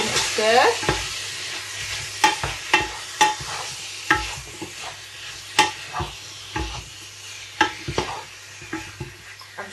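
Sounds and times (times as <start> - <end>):
lamb browning with onions in a pan for a stew: 0.0 - 9.7
scraping strokes of stirring: 0.8 - 6.9, 7.6 - 9.7.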